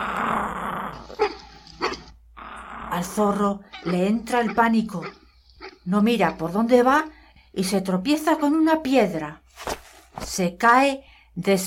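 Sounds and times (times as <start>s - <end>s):
animal growling while chasing another creature: 0.0s - 6.7s
speech: 3.0s - 5.2s, 5.8s - 9.4s, 10.2s - 11.6s.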